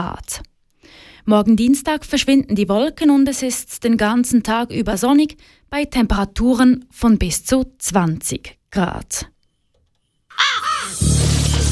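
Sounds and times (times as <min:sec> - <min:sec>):
speech: 0:00.0 - 0:09.3
raven cawing: 0:10.3 - 0:11.1.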